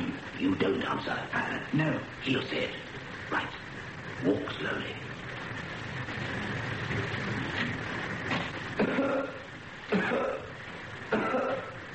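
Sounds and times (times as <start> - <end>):
steady low rumble of noise: 0.0 - 11.9
speech: 0.4 - 3.6, 4.2 - 5.1
man coughing: 8.8 - 11.8.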